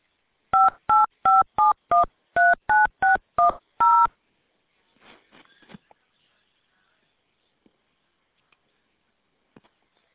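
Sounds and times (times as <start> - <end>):
touch-tone keypad beeps entering a mobile phone number: 0.6 - 4.1.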